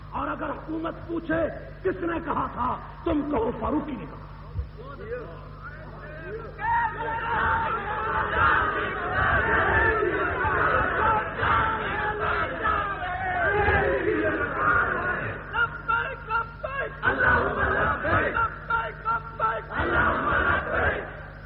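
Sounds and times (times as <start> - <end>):
speech: 0.4 - 5.5, 6.3 - 9.6
large crowd chanting and shouting slogans in unison: 6.6 - 15.7, 16.7 - 21.3.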